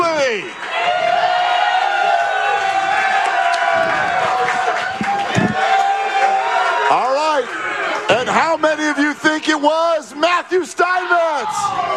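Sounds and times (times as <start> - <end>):
large crowd cheering and shouting: 0.0 - 11.9
audience applause: 0.4 - 8.0.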